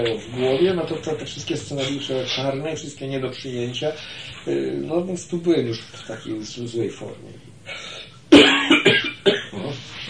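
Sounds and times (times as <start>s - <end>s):
speech: 0.0s - 7.9s
person coughing harshly: 8.3s - 9.6s.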